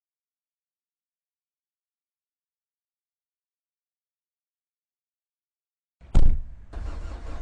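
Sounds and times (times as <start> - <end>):
car engine cranking and idling: 6.1 - 7.3.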